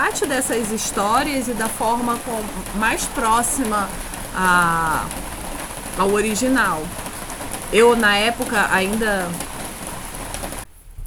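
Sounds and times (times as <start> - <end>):
heavy rain: 0.0 - 11.0
speech: 0.1 - 5.3, 6.0 - 7.0, 7.7 - 9.5.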